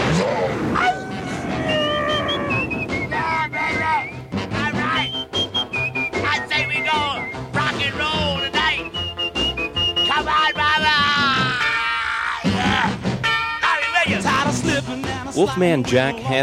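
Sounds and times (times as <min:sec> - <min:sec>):
voices shouting and hollering: 0:00.1 - 0:14.3
shrill whistle blasts from a radio disc jockey: 0:01.6 - 0:11.3
speech: 0:15.4 - 0:16.4.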